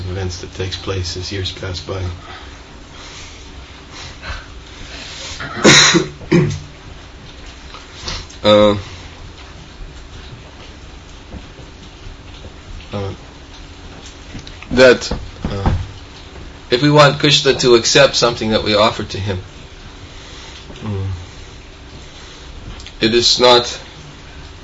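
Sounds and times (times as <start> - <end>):
low steady hum: 0.0 - 24.6
speech: 0.1 - 2.5, 8.4 - 8.9, 14.8 - 15.2, 16.7 - 19.5, 23.0 - 23.8
person coughing: 5.4 - 6.6.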